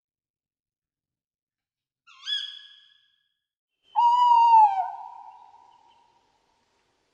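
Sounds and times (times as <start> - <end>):
tawny owl hooting: 3.9 - 6.2.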